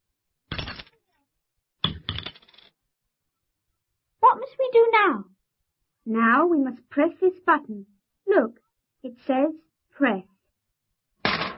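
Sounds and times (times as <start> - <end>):
coins dropping into a ticket machine slot at a railway station: 0.5 - 1.0, 1.8 - 2.7, 11.2 - 11.5
speech: 4.4 - 5.3, 6.1 - 10.3.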